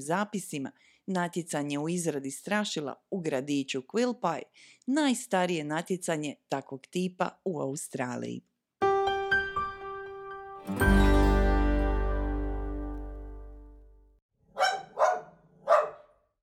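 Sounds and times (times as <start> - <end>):
speech: 0.0 - 8.5
short musical sting ending on a ringing chord: 8.8 - 13.9
dog barking loudly: 14.5 - 16.2.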